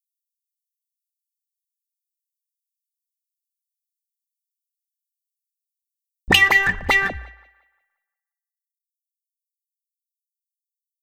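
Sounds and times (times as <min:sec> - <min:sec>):
wah wah guitar: 0:06.3 - 0:07.5.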